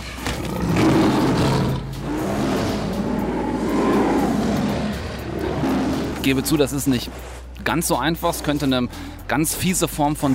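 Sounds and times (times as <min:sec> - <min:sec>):
lion roaring and growling in a film sound effect fight: 0:00.0 - 0:07.4
speech: 0:06.2 - 0:10.3.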